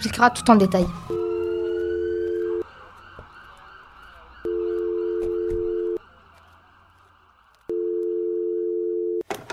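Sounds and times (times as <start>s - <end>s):
speech: 0.0s - 1.2s
telephone ringing tone while calling someone: 1.1s - 2.6s, 4.4s - 6.0s, 7.7s - 9.2s.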